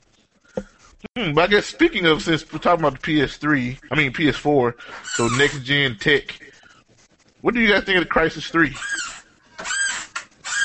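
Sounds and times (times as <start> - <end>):
speech: 1.1 - 6.5, 7.4 - 9.0
chair squeaking: 5.0 - 5.8, 8.6 - 10.6.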